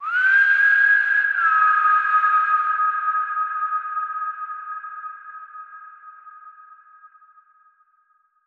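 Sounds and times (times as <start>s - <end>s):
person whistling a call: 0.0s - 4.8s.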